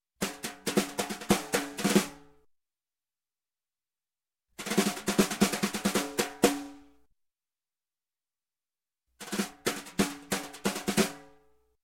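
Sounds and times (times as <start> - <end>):
snare drum with snares off, accent with brushes: 0.2 - 2.2, 4.6 - 6.8, 9.2 - 11.2.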